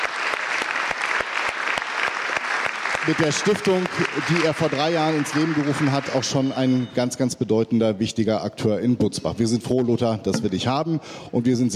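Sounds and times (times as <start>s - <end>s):
audience applauding at a local cultural event: 0.0s - 6.9s
speech: 3.1s - 11.7s.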